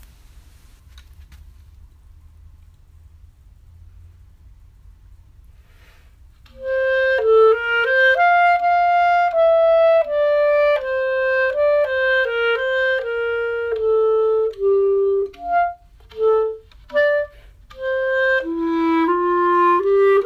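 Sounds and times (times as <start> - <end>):
clarinet playing andante: 6.5 - 20.2.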